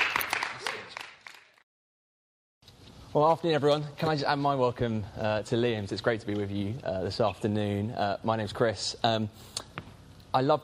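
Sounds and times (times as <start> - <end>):
audience applause welcoming a guest: 0.0 - 1.6
speech: 3.1 - 9.7, 10.3 - 10.6.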